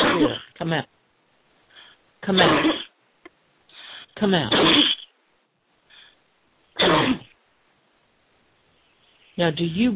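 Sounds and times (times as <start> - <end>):
woman coughing: 0.0 - 0.5, 2.2 - 2.9, 4.4 - 5.0, 6.8 - 7.3
speech: 0.2 - 1.0, 2.2 - 2.8, 4.2 - 4.9, 9.4 - 9.9.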